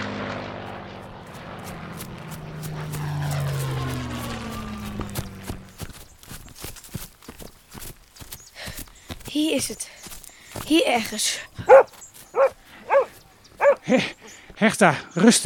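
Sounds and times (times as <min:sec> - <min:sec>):
clattering footsteps: 0:01.0 - 0:14.6
rustling movement: 0:01.3 - 0:13.9
speech: 0:10.9 - 0:11.9, 0:13.9 - 0:15.4
dog barking: 0:11.6 - 0:13.9.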